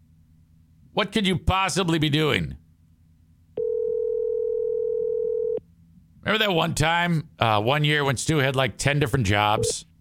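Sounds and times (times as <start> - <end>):
speech: 1.0 - 2.6, 6.2 - 9.9
electronic phone ringback tone through a phone line on an outgoing call: 3.6 - 5.6.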